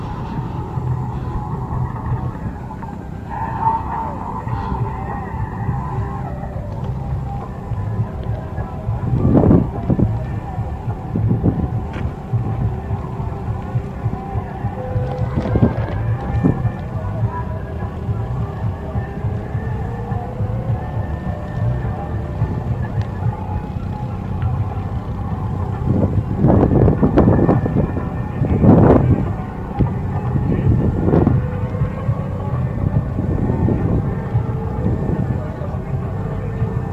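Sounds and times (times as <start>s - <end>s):
low rumble at a desert arts festival: 0.0s - 36.9s
wind buffeting the microphone in the desert: 0.0s - 36.9s.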